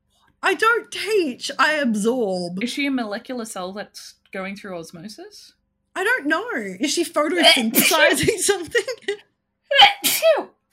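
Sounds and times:
speech: 0.5 - 10.6
single loud sneeze: 9.7 - 10.5.

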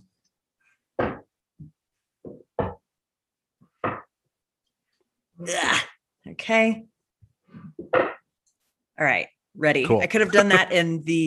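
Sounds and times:
chair being moved with thuds and knocks: 1.0 - 2.9, 3.8 - 4.2, 7.5 - 8.3
speech: 5.4 - 6.9, 9.0 - 11.2.

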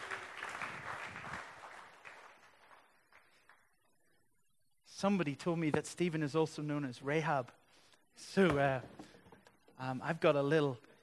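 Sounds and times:
crowd applauding a man coming on stage: 0.0 - 3.7
speech: 5.0 - 7.6, 8.2 - 9.1, 9.8 - 10.9.

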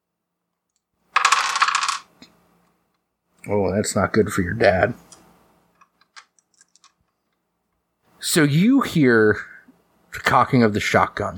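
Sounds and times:
dice rolled during a tabletop game: 1.1 - 2.3, 6.0 - 7.0
speech: 3.5 - 5.1, 8.4 - 9.6, 10.2 - 11.3.

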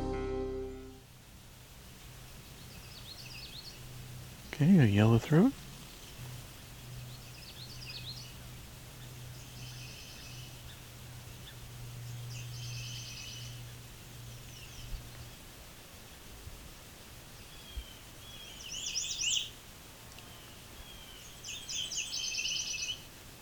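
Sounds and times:
steady outdoor hiss: 0.6 - 23.4
Nashville warbler singing: 2.6 - 3.9, 4.5 - 15.4, 17.4 - 19.6, 20.2 - 23.4
speech: 5.3 - 5.6.

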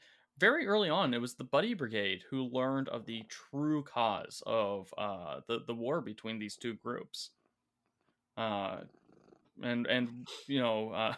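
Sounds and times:
speech: 0.4 - 7.4, 8.4 - 9.0, 9.6 - 11.1
cat purring: 6.6 - 10.3.

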